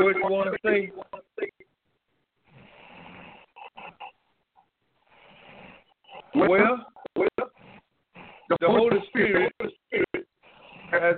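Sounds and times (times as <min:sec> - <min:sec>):
speech: 0:00.0 - 0:01.2, 0:06.3 - 0:07.6, 0:08.5 - 0:10.3, 0:10.9 - 0:11.1
caller breathing heavily and raspily on a phone line: 0:02.4 - 0:04.2, 0:05.0 - 0:06.4, 0:07.0 - 0:11.1.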